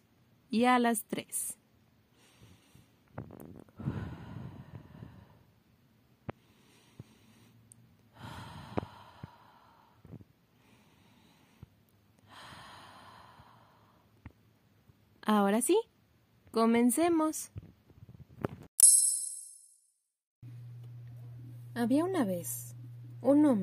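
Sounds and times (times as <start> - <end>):
speech: 0.5 - 1.6, 3.2 - 4.0, 15.3 - 15.9, 16.5 - 17.6, 21.8 - 23.6
slow deep breathing in and out as a breathing exercise: 2.1 - 5.7, 6.3 - 14.2.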